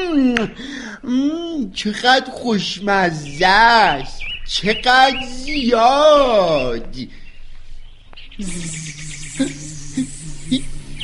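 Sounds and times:
speech: 0.2 - 7.2, 8.4 - 9.6
mosquitoes buzzing: 5.3 - 11.0.

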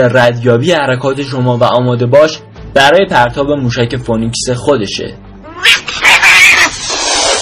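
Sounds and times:
speech: 0.0 - 6.0
cat yowling: 5.4 - 7.4.

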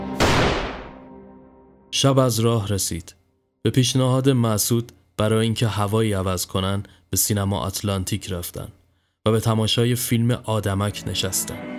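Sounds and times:
loud sharp gunshot: 0.1 - 1.1
speech: 1.9 - 11.7.

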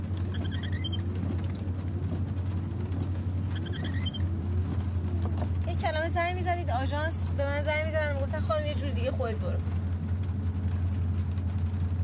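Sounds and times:
car engine cranking and failing to start: 0.0 - 12.0
faint squeaky mechanical chirps: 0.2 - 1.8, 3.4 - 4.4
speech: 6.1 - 9.8.

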